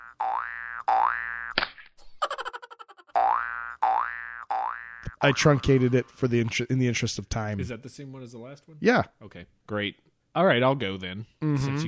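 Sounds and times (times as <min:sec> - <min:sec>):
cartoon boing for a bouncing Easter egg: 0:00.0 - 0:01.6, 0:03.1 - 0:05.5
speech: 0:05.2 - 0:11.8.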